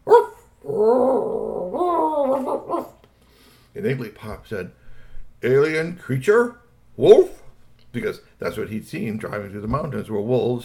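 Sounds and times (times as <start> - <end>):
dog barking: 0.0 - 0.5
dog whining with a howl-like whine: 0.0 - 3.0
speech: 3.7 - 4.8, 5.4 - 10.6.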